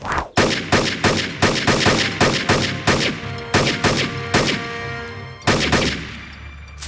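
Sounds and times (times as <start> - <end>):
gunshots from shooting at targets: 0.3 - 4.8, 5.4 - 6.2.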